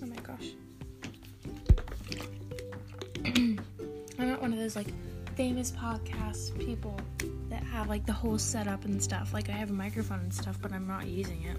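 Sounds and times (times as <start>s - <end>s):
wet squishy liquid sounds of drinking water: 1.0s - 4.4s
speech: 4.7s - 11.5s.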